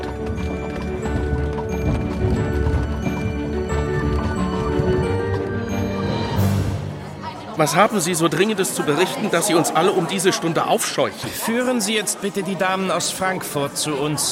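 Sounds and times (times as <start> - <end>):
horse-drawn carriage wheels rumbling and rattling: 0.0 - 6.2
horse hooves clip-clopping: 0.0 - 6.5
speech: 7.6 - 14.3.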